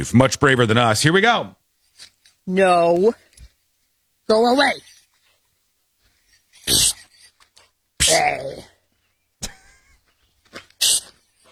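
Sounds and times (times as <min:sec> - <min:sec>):
speech: 0:00.0 - 0:03.2, 0:04.3 - 0:04.9, 0:08.1 - 0:08.7
soft breathy noises: 0:04.6 - 0:11.5
dog training device mimicking snake hissing: 0:06.6 - 0:07.2, 0:10.8 - 0:11.2.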